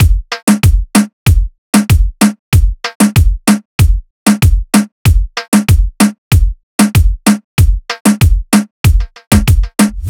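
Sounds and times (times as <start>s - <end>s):
hip hop drum loop: 0.0s - 10.0s.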